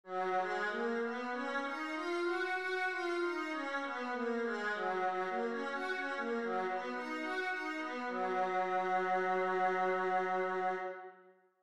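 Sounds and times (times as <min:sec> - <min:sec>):
viola playing G flat major scales: 0:00.1 - 0:11.1.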